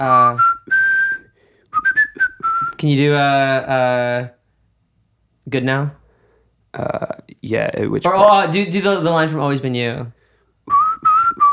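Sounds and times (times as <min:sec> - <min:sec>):
person whistling: 0:00.0 - 0:02.9, 0:10.7 - 0:11.5
speech: 0:02.8 - 0:04.4, 0:05.5 - 0:06.0, 0:06.8 - 0:10.2.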